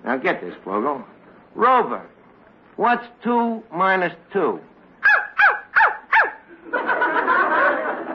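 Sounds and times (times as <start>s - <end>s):
speech: 0.1s - 2.2s, 2.8s - 4.7s
dog barking: 5.0s - 6.4s
laughter: 6.5s - 8.1s.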